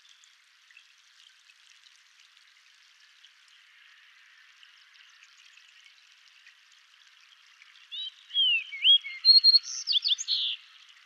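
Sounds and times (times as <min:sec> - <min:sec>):
Fox Sparrow (Passerella iliaca) song: 0:07.9 - 0:10.7.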